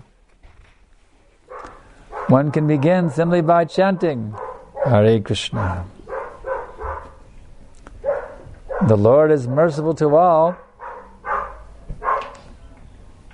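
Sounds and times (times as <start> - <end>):
dog barking: 1.5 - 7.2, 8.0 - 9.0, 10.5 - 12.4
speech: 2.3 - 6.0, 8.8 - 10.6.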